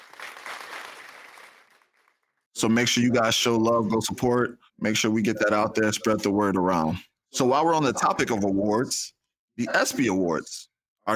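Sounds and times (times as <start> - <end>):
crowd applause: 0.0 - 2.0
speech: 2.6 - 11.1.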